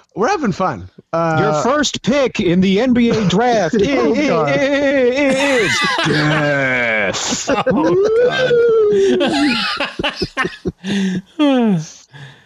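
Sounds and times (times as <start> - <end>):
speech: 0.2 - 12.4
people giggling and laughing: 3.1 - 11.4
voice imitating a wailing siren: 7.7 - 9.3.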